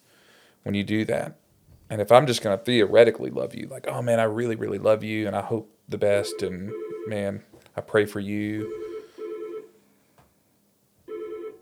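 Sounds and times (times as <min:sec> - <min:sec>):
speech: 0:00.6 - 0:08.8
telephone ringing with a warbling electronic ring for an incoming call: 0:06.3 - 0:07.2, 0:08.6 - 0:09.7, 0:11.1 - 0:11.6.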